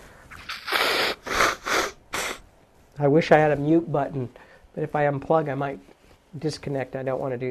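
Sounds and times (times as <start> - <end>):
person with a cold blowing nose: 0.3 - 2.5
speech: 3.0 - 7.4.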